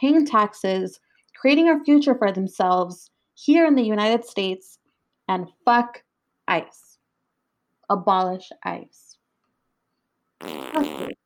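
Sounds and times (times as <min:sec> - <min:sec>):
speech: 0:00.0 - 0:06.8, 0:07.9 - 0:09.0, 0:10.4 - 0:11.2
wet fart: 0:10.4 - 0:11.2.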